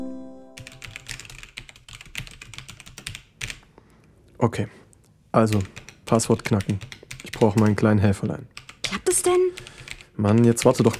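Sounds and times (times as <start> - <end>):
typing on a computer keyboard: 0.6 - 3.6, 5.5 - 7.8, 8.6 - 10.9
speech: 4.4 - 8.6, 9.2 - 10.9.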